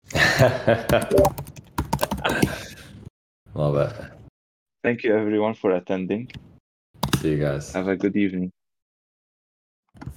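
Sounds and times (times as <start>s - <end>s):
speech: 0.4s - 1.5s, 3.6s - 4.1s, 4.8s - 6.5s, 7.2s - 8.6s
loud rapid typing on a computer keyboard: 0.9s - 2.4s.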